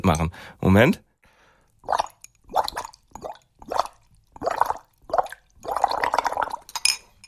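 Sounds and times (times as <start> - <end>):
speech: 0.0 - 1.1, 1.8 - 2.1
air blown through a straw into water bubbling: 1.8 - 6.7.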